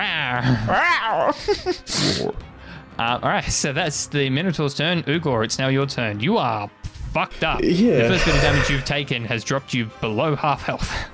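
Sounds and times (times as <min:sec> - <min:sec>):
speech: 0:00.4 - 0:11.1
person imitating a feeble lion cub roar: 0:07.4 - 0:09.0.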